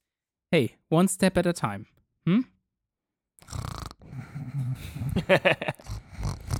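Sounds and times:
speech: 0.5 - 2.5, 5.3 - 5.9
raspy human snoring: 3.4 - 6.5
laughter: 4.8 - 5.9.

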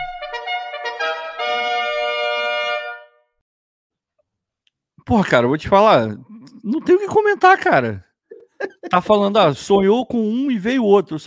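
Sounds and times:
brassy horn sound effect tooting and blaring: 0.1 - 3.2
speech: 5.1 - 11.2
laughter: 6.4 - 9.2.

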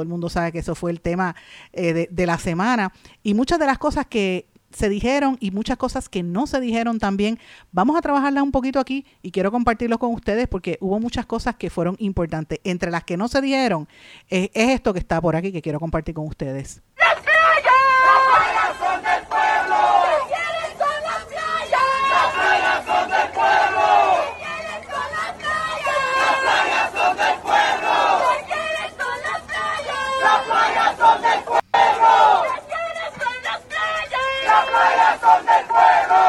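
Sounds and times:
speech: 0.0 - 17.0
crowd cries and yells: 17.0 - 36.2
large crowd shouting and chanting: 17.0 - 36.2.

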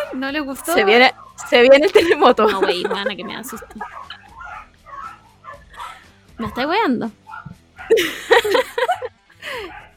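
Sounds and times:
higher dog yips: 0.0 - 1.8, 3.2 - 8.0, 9.6 - 9.9
several dogs barking angrily at a window: 0.0 - 9.9
speech: 0.1 - 4.1, 6.4 - 7.2, 7.9 - 9.8
laughter: 1.7 - 4.4, 5.6 - 6.2, 7.8 - 9.8.

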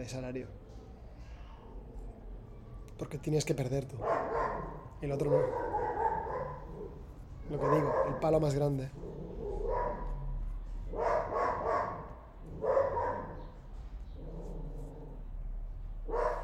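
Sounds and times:
speech: 0.0 - 0.6, 3.0 - 5.8, 7.5 - 9.1
neighbour's dog barking: 4.0 - 13.6, 16.0 - 16.4.

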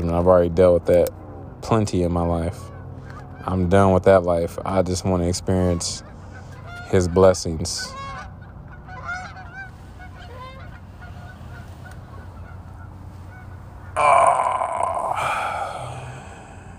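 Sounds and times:
speech: 0.1 - 2.7, 3.4 - 6.1, 6.9 - 8.0
flock of geese honking: 2.3 - 16.7
steady low rumble: 8.1 - 16.7.

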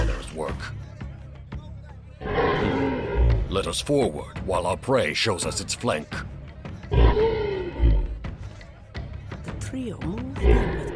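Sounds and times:
creature roaring in deep growling bursts: 2.2 - 3.5, 6.9 - 8.1
speech: 3.6 - 6.3, 9.8 - 10.9.

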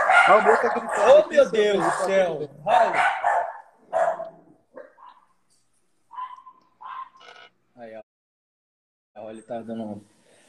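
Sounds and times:
dogs barking at car outside house: 0.0 - 5.4, 6.1 - 7.2
speech: 0.3 - 3.1, 9.2 - 10.1.

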